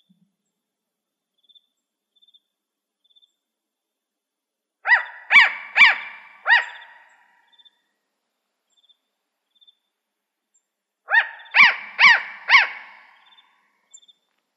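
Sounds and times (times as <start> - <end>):
spotted owl barking in Arizona: 4.8 - 7.4, 11.1 - 13.5.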